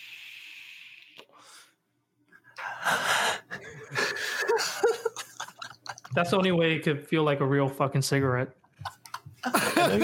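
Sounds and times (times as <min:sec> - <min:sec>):
person exhaling vapour in rough breathy bursts: 0:00.0 - 0:01.8
person inhaling deeply from a vape: 0:00.0 - 0:01.8
laughter: 0:03.5 - 0:06.5, 0:08.7 - 0:10.0
speech: 0:06.2 - 0:08.6, 0:09.8 - 0:10.0.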